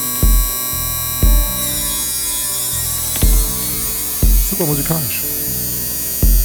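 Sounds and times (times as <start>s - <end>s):
reverberant electric buzz from a swept hi-hat with tonal resonances: 0.0s - 6.4s
deep thumping hits: 0.2s - 2.4s, 3.2s - 4.9s, 6.2s - 6.4s
speech: 4.5s - 5.5s.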